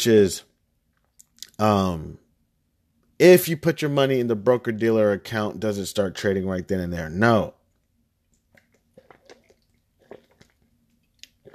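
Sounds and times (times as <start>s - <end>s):
speech: 0.0s - 0.5s, 1.6s - 2.2s, 3.2s - 7.6s
sipping Smartwater from a bottle: 8.2s - 11.5s
swallowing: 8.4s - 11.5s.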